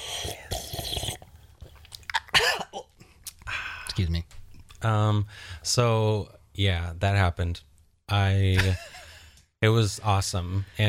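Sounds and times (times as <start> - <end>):
slurping sips of tea from a cup: 0.0 - 2.0
swallowing: 0.0 - 3.5
speech: 4.8 - 8.9, 9.6 - 10.8.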